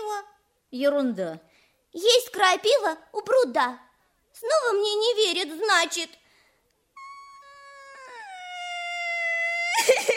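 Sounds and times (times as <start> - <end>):
speech: 0.2 - 6.2, 9.8 - 10.1
child crying: 7.0 - 10.1.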